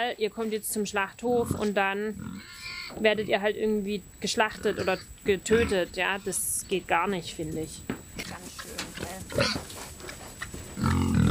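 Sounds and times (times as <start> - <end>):
speech: 0.0 - 8.8, 9.4 - 9.6
pigs grunting and snuffling: 1.3 - 3.5, 4.4 - 6.4, 8.9 - 11.2
pigs squealing: 1.4 - 3.3, 4.4 - 6.4, 9.0 - 9.7, 10.8 - 11.2.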